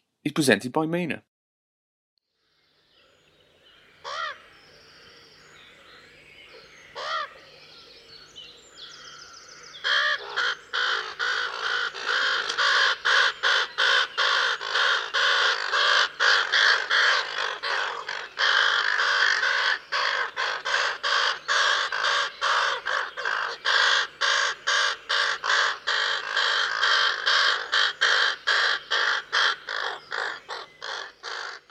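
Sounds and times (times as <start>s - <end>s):
speech: 0.2s - 1.3s
raven croaking: 9.8s - 31.6s.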